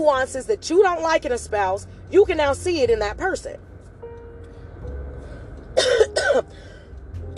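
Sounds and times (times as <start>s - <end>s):
speech: 0.0s - 3.7s, 5.8s - 6.7s
harsh raspy coughs with throat clearing: 5.8s - 6.5s.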